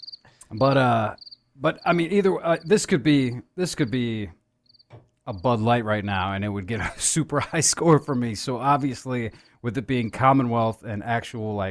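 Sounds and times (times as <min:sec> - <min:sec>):
cricket chirping: 0:00.0 - 0:02.8, 0:04.6 - 0:05.4
speech: 0:00.5 - 0:11.6.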